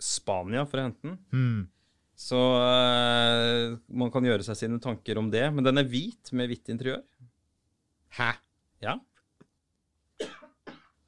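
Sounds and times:
speech: 0.2s - 7.2s, 8.1s - 9.1s
faint throat sound: 10.2s - 11.0s
person coughing: 10.2s - 11.0s.

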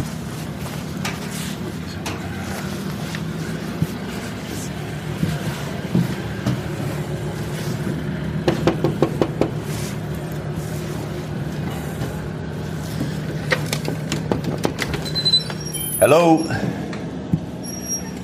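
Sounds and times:
low engine-like rumble: 0.0s - 18.2s
knocking on a door: 8.5s - 9.5s
speech: 16.1s - 16.7s.

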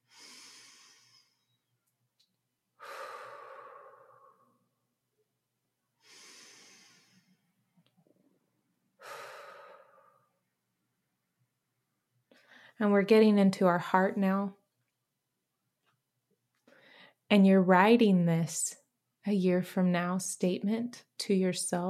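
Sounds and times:
deep breaths: 0.0s - 1.7s, 2.8s - 4.8s, 6.0s - 7.7s, 9.0s - 10.5s, 12.3s - 12.8s, 16.6s - 17.3s
speech: 12.8s - 14.6s, 17.3s - 21.8s.

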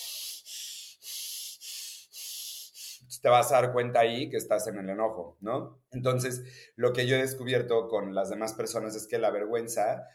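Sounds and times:
voice imitating heavy breathing of an angry person: 0.0s - 3.2s
speech: 3.2s - 10.1s.

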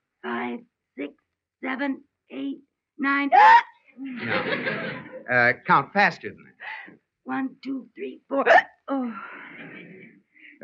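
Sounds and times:
speech: 0.6s - 6.5s, 7.3s - 9.4s
laughter: 4.0s - 6.1s, 9.2s - 10.6s
person hiccuping: 8.4s - 8.8s.

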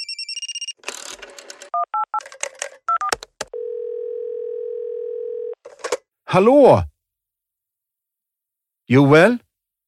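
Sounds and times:
long steady dial-type telephone tone: 2.9s - 5.6s
speech: 6.3s - 6.9s, 8.9s - 9.4s.

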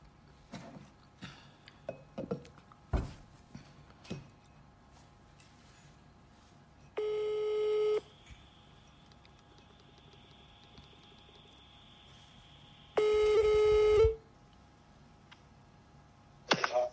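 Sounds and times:
telephone ringing tone: 7.0s - 8.1s, 13.0s - 14.2s
telephone dialing clicks and taps: 8.9s - 11.7s.

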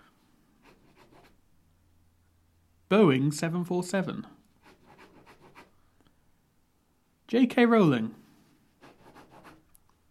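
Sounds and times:
pen scribbling on paper: 0.6s - 1.4s, 4.6s - 5.7s, 8.8s - 9.6s
speech: 2.9s - 4.4s, 7.3s - 8.2s.

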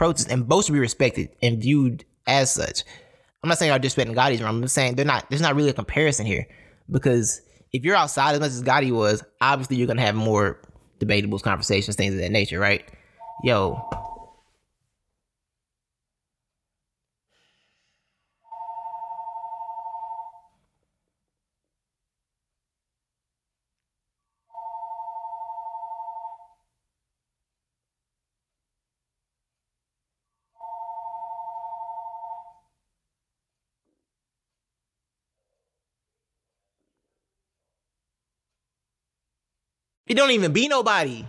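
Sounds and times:
speech: 0.0s - 14.1s, 40.1s - 41.2s
phone ringing with electronic tones: 13.2s - 14.4s, 18.5s - 20.5s, 24.5s - 26.6s, 30.6s - 32.6s.

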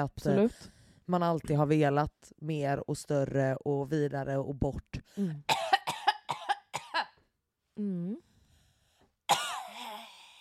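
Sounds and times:
speech: 0.0s - 5.5s, 7.8s - 8.3s
woman clearing throat: 5.4s - 7.1s, 9.3s - 10.1s
woman coughing: 5.4s - 7.2s, 9.3s - 10.2s
woman humming: 7.8s - 8.3s.

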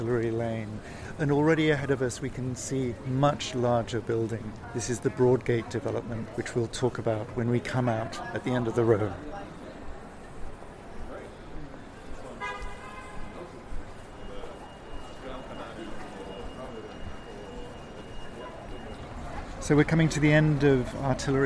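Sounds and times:
speech: 0.0s - 9.4s, 19.7s - 21.4s
busy street traffic rumbling: 0.0s - 21.4s
faint voices murmuring: 0.0s - 21.4s
car horn toot: 12.4s - 13.4s.

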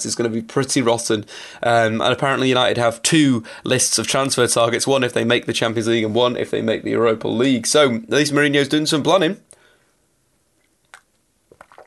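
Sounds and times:
speech: 0.0s - 9.5s
short wet slurp of coffee: 10.9s - 11.8s
soft mouth and swallowing noises: 10.9s - 11.8s.

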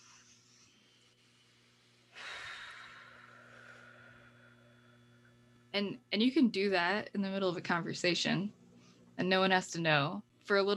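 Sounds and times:
soft deep breath with long steady exhale: 0.0s - 5.1s
faint low hum: 0.0s - 10.7s
speech: 5.8s - 8.6s, 9.2s - 10.7s.

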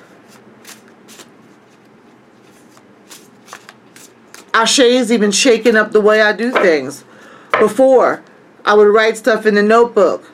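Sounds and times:
tarot cards being shuffled by hand: 0.2s - 4.5s
speech: 4.6s - 10.3s.

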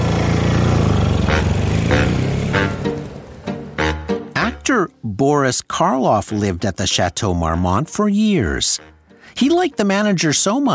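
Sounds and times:
motorcycle engine rumbling and revving: 0.0s - 4.3s
speech: 4.7s - 10.7s.

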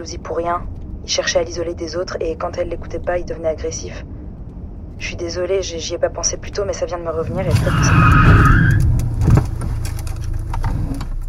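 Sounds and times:
speech: 0.0s - 4.2s, 5.0s - 8.4s
car engine rumble: 0.0s - 11.2s
car braking suddenly: 7.3s - 11.2s.

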